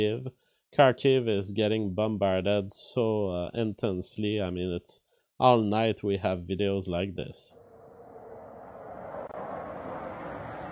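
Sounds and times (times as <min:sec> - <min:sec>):
speech: 0:00.0 - 0:07.6
jet aircraft engine roar: 0:07.5 - 0:10.7.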